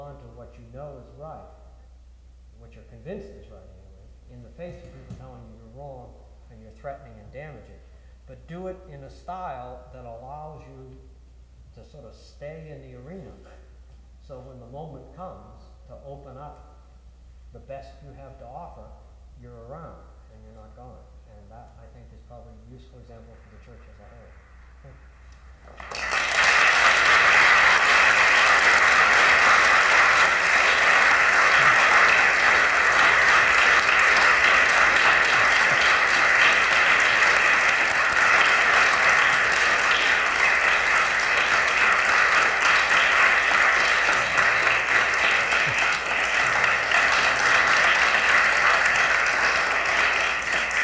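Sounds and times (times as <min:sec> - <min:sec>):
speech: 0:00.5 - 0:01.6, 0:02.6 - 0:11.1, 0:11.8 - 0:13.7, 0:14.3 - 0:16.7, 0:17.5 - 0:25.0
loud applause from a large crowd: 0:25.6 - 0:50.8.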